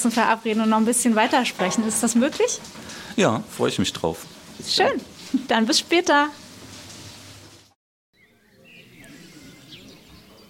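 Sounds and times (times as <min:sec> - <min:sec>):
speech: 0:00.0 - 0:06.4
bird chirps and tweets in a sunny courtyard: 0:08.1 - 0:10.4.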